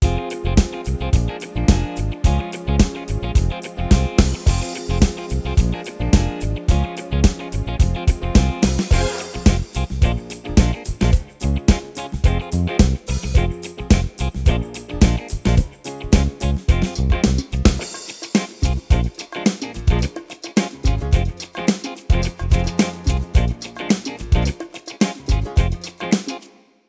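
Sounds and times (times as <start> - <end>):
funk disco dance music on a Yamaha Tyros3: 0.0 - 26.4.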